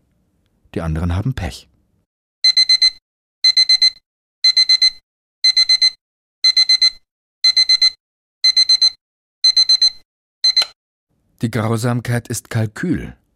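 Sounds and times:
speech: 0.7 - 1.7, 11.4 - 13.2
digital alarm clock beeping to wake a sleeper: 2.4 - 10.8.

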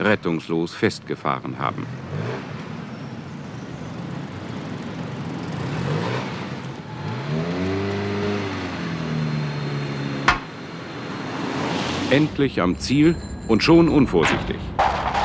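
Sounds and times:
speech: 0.0 - 2.5, 12.1 - 14.7
car engine idling and revving at low speed while maneuvering into a parking space: 1.4 - 12.6
sharp knock: 10.3 - 10.5.

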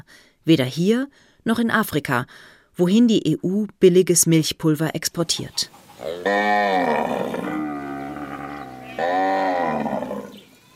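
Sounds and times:
speech: 0.1 - 7.6
cow mooing on a farm: 6.0 - 10.5.

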